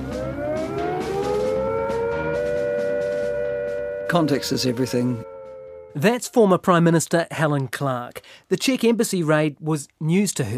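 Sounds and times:
civil defence siren sounding a nuclear attack warning: 0.0s - 6.5s
speech: 4.1s - 5.3s, 6.0s - 10.5s.

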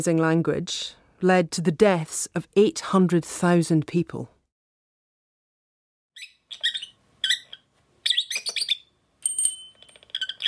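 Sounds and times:
speech: 0.0s - 4.4s
blue lovebird chirping and trilling: 6.2s - 8.9s, 10.0s - 10.4s.

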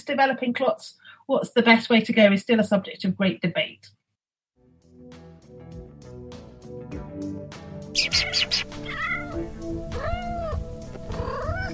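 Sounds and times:
speech: 0.0s - 4.0s
steady music: 4.6s - 11.7s
kitten meowing: 8.0s - 11.7s.

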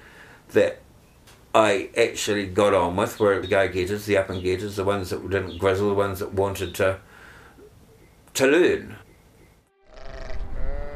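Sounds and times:
speech: 0.5s - 0.8s, 1.5s - 7.1s, 8.4s - 9.0s
sheep bleating outdoors: 9.8s - 10.9s
rumbling wind or handling noise outdoors: 10.0s - 10.9s.

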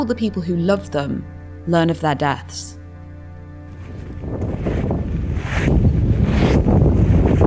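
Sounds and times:
speech: 0.0s - 2.8s
people walking on crunching gravel in a cemetery: 3.7s - 7.4s
strong wind buffeting a microphone outdoors in a cemetery: 3.7s - 7.4s.

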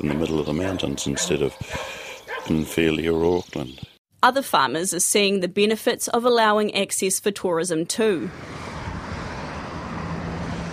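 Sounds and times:
vehicles driving past on valley road: 0.0s - 3.6s, 8.2s - 10.7s
speech: 0.0s - 8.7s.

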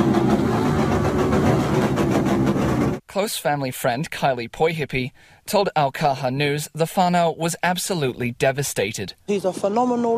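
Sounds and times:
several motorbike engines revving at a funeral: 0.0s - 3.0s
speech: 3.2s - 10.1s.

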